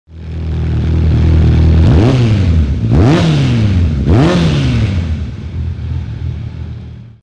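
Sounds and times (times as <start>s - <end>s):
Suzuki Bandit 600 at Imola: 0.1s - 7.2s.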